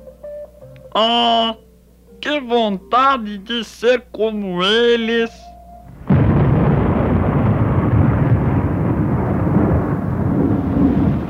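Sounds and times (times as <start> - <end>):
speech: 1.0 - 1.6, 2.2 - 5.5
heavy rain: 5.9 - 11.2
thunder: 5.9 - 11.2.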